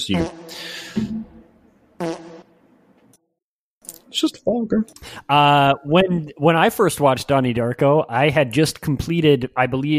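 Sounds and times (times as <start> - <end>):
speech: 0.0 - 1.3, 4.2 - 9.9
fart sound effect: 0.1 - 1.2, 2.0 - 2.5.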